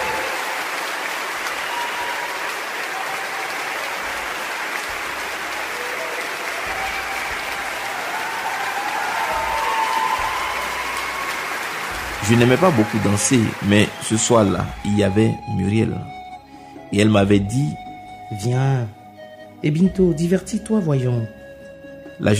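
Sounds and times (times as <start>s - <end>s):
large crowd applauding: 0.0s - 15.3s
speech: 12.3s - 16.2s, 16.9s - 19.0s, 19.6s - 21.4s, 22.2s - 22.3s.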